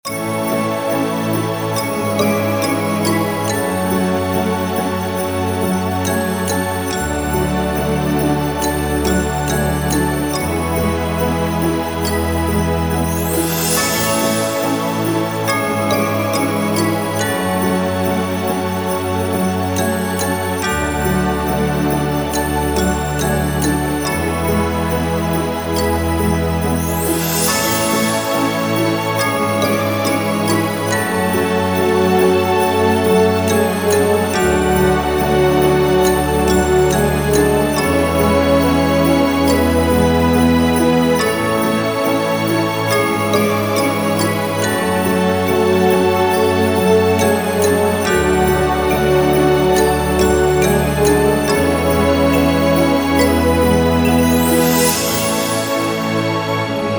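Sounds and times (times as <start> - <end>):
Christmas celebration music: 0.0 - 56.9.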